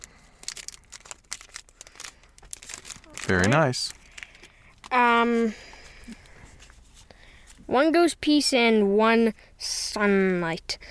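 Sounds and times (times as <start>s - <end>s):
plastic trading card booster pack torn open: 0.0s - 5.0s
speech: 3.3s - 4.0s, 4.9s - 6.2s, 7.7s - 10.8s.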